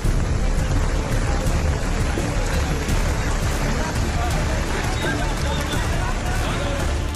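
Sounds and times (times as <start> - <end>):
heavy rain pouring during a flood rescue: 0.0 - 7.1
indistinct voices: 0.0 - 7.1
scattered sharp splashes: 0.0 - 7.1.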